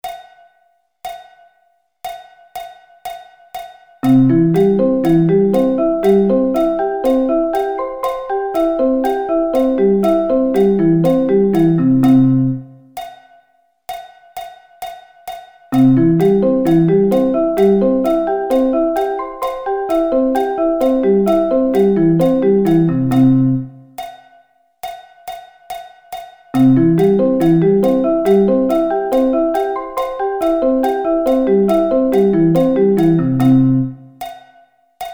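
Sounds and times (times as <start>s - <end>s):
C arpeggio inversions: 4.0s - 12.8s, 15.8s - 23.8s, 26.6s - 34.0s.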